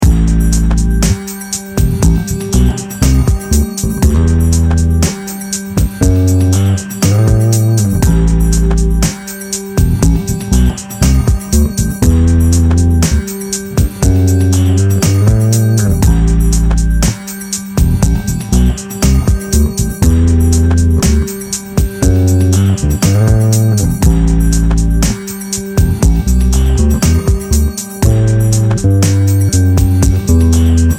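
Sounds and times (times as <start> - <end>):
bass playing a Dorian groove in A: 0.0 - 9.2, 9.8 - 17.2, 17.8 - 30.9.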